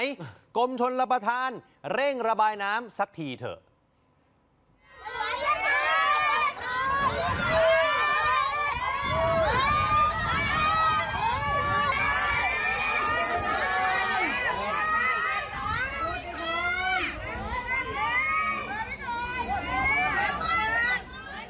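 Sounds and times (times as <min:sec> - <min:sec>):
speech: 0:00.0 - 0:03.7
crowd of villagers shouting and clamoring at water gate: 0:05.0 - 0:21.4.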